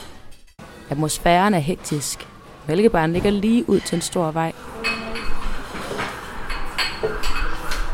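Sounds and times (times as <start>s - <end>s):
speech: 0.9s - 4.9s
plates glasses and cutlery clattering in a busy canteen: 3.6s - 7.9s.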